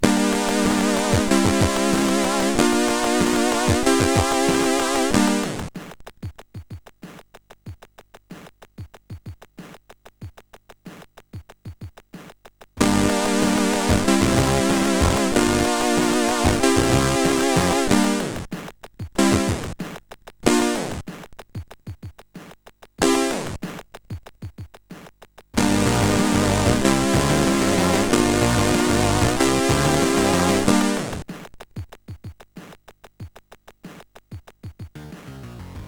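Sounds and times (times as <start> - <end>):
chiptune music on CSG8580R5 sound chip: 0.0 - 5.7, 12.8 - 18.5, 19.2 - 19.8, 20.4 - 21.0, 23.0 - 23.6, 25.6 - 31.2, 34.9 - 35.8.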